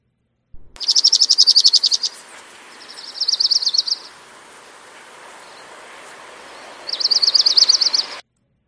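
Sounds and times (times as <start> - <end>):
faint hiss of outdoor background: 0.6 - 8.2
dark-eyed junco trill song: 0.8 - 8.2.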